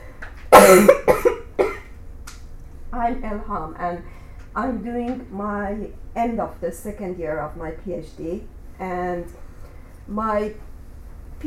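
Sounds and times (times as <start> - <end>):
harsh chesty coughing from a person with a bad cough: 0.5 - 1.9
speech: 0.7 - 1.1, 3.1 - 9.4, 10.1 - 10.7.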